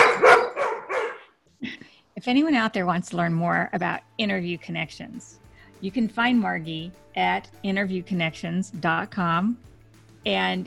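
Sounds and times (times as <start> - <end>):
dog barking: 0.0 - 1.3
speech: 2.2 - 10.6.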